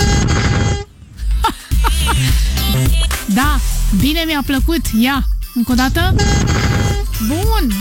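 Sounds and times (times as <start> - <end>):
loud brassy bugle call: 0.0 - 0.9, 6.1 - 7.2
laughter: 1.2 - 2.8
speech: 3.4 - 7.7.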